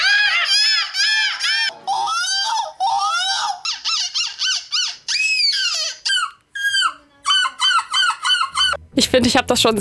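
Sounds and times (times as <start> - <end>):
participants imitating gull calls at a seagull-imitation championship in Belgium: 0.0 - 8.8
speech: 9.0 - 9.7.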